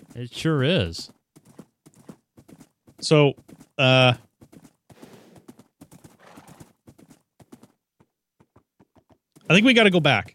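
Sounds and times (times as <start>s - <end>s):
horse hooves clip-clopping on a long bridge: 0.0s - 10.3s
speech: 0.2s - 1.2s, 3.0s - 4.3s, 9.5s - 10.3s
horse whinnying: 6.1s - 6.7s.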